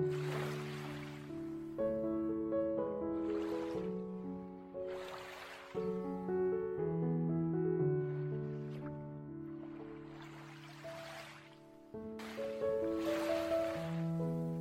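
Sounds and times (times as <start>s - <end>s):
ocean waves breaking: 0.0s - 1.8s, 3.1s - 4.0s, 4.7s - 6.1s, 9.6s - 14.6s
soft sustained ambient music tones: 0.0s - 14.6s.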